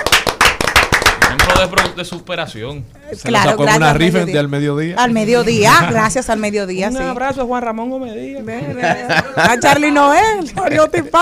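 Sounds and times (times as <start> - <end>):
hand clapping from a few people: 0.0 - 2.3
speech: 1.6 - 11.2
laughter: 8.5 - 11.2.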